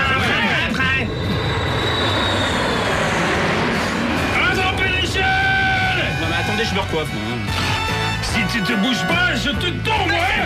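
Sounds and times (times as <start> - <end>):
airplane engine drone from a plane flying in to pick people up: 0.0 - 8.3
speech: 7.0 - 7.6, 8.6 - 10.4.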